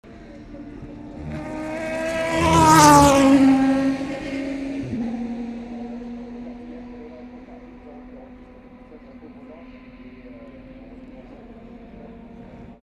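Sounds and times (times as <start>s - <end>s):
Aston Martin car at Tertre Rouge: 0.0s - 12.8s.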